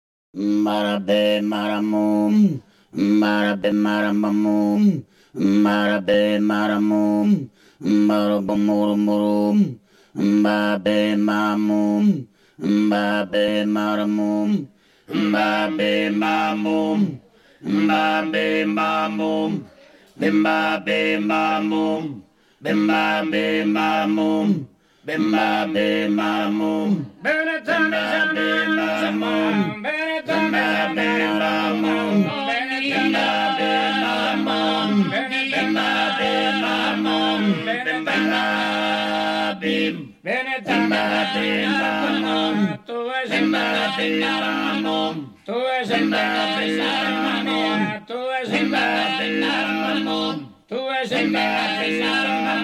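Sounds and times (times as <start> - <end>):
men singing tenore chant: 0.4 - 52.6.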